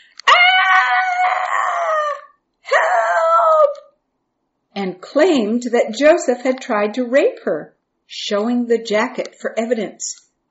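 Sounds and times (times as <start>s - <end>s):
woman letting out a loud high-pitched scream: 0.2s - 3.9s
speech: 4.8s - 10.2s.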